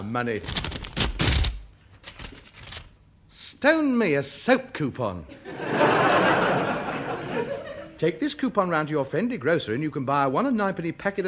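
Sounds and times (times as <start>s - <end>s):
speech: 0.1s - 0.8s, 3.6s - 6.4s, 8.0s - 11.2s
swordfish letter opener slitting open a paper envelope: 0.4s - 2.9s
laughter: 5.3s - 8.0s.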